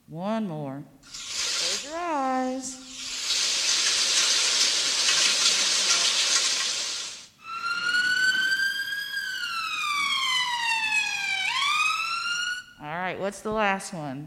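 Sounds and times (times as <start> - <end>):
speech: 0.1 - 1.2, 1.9 - 2.8, 13.3 - 14.2
steady rushing hiss: 1.0 - 7.4
siren wailing: 7.4 - 12.9.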